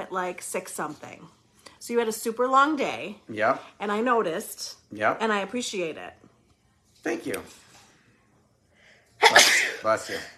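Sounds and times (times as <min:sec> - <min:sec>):
speech: 0:00.1 - 0:06.2, 0:07.0 - 0:07.6, 0:09.2 - 0:10.3
sneeze: 0:09.2 - 0:10.3.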